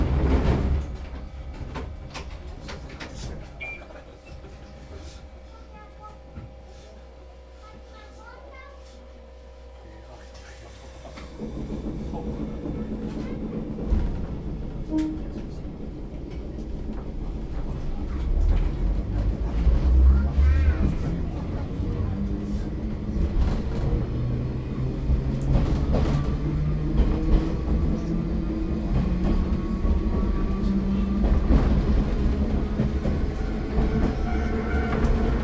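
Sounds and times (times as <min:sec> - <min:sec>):
one-man electric railcar rolling along the rails: 0:00.0 - 0:35.4.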